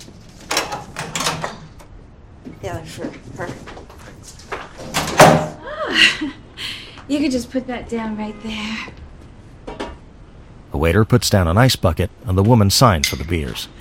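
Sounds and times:
door opening clunks and rattles: 0.5s - 1.9s
speech: 2.6s - 4.4s, 6.0s - 6.4s, 7.1s - 9.0s, 10.8s - 13.7s.

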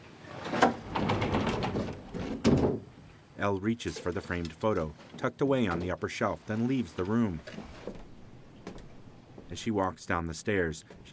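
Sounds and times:
sliding closet door in a bedroom pushed open: 0.0s - 3.0s, 3.9s - 9.5s
speech: 3.4s - 7.8s, 9.5s - 11.1s.

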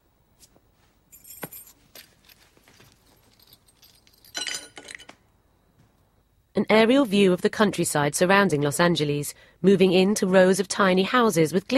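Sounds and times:
house keys put down on a table: 1.1s - 5.1s
speech: 6.6s - 11.7s.

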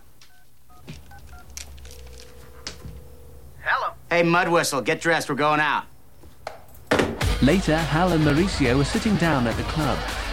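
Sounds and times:
telephone keypad dual-tone beeps: 0.3s - 2.1s
speech: 4.2s - 5.9s, 7.4s - 10.2s.

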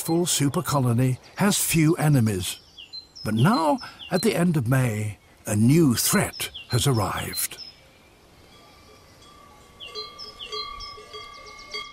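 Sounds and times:
speech: 0.0s - 2.6s, 3.2s - 7.6s
cowbells clanking on cows crossing a meadow in the Jura: 9.2s - 11.9s.

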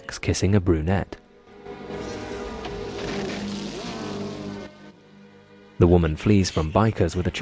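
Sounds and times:
speech: 0.2s - 1.2s, 5.8s - 7.3s
engine roaring: 1.5s - 5.0s.

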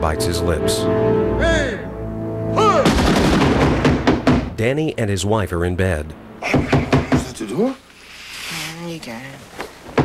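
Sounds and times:
speech: 0.0s - 1.8s, 4.6s - 6.8s, 7.6s - 7.8s, 9.0s - 9.6s
music: 0.0s - 4.2s
rifle volley of a gun salute: 2.8s - 4.5s.

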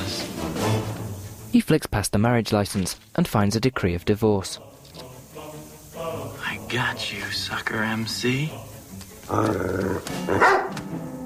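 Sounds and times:
speech: 1.5s - 4.8s, 6.0s - 8.7s, 9.3s - 11.2s
dog wearing a priest's collar barking: 10.2s - 10.8s.

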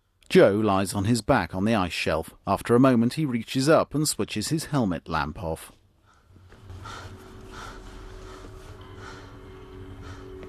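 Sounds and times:
speech: 0.3s - 5.8s
heavy ragged breathing: 6.0s - 10.4s
low rumbling drone: 6.5s - 10.4s.

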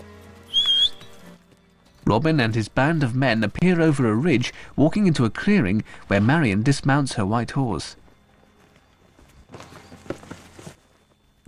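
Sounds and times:
man whistling in a forest: 0.5s - 1.2s
speech: 2.1s - 8.0s.

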